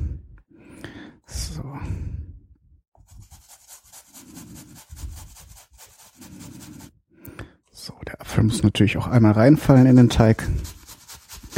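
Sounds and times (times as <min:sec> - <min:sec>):
potato grated on a small hand grater: 0:03.1 - 0:06.9, 0:09.5 - 0:11.5
speech: 0:08.0 - 0:10.7.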